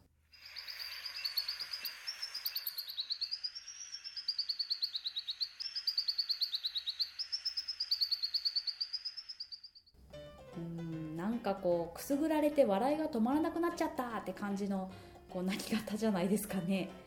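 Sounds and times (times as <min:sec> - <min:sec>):
regal sunbird calling in high thin notes: 0:00.4 - 0:09.8
speech: 0:11.4 - 0:17.0.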